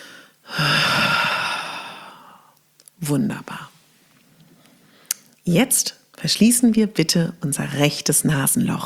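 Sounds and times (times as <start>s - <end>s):
long forceful exhale during breathing exercise: 0.0s - 2.5s
speech: 3.1s - 3.7s, 5.5s - 8.8s.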